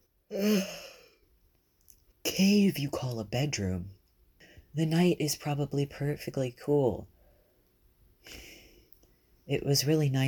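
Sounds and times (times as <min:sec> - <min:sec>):
speech: 0:00.3 - 0:00.8, 0:02.4 - 0:04.0, 0:04.8 - 0:07.1, 0:08.2 - 0:08.5, 0:09.5 - 0:10.2
person yawning: 0:00.3 - 0:01.2.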